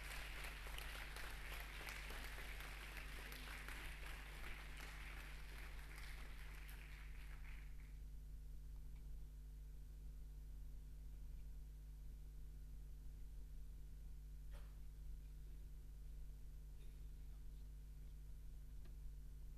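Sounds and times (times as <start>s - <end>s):
audience applauding: 0.0s - 8.0s
low hum: 0.0s - 19.5s.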